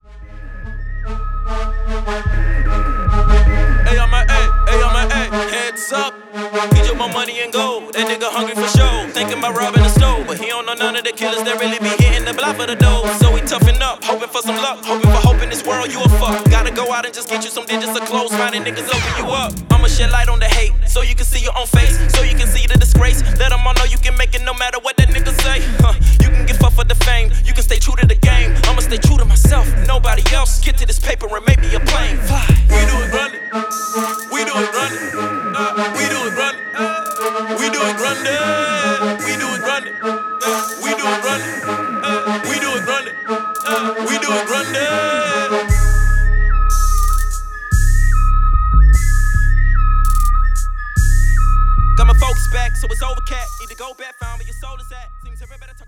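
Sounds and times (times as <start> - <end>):
hip hop rapping: 0.0 - 55.8.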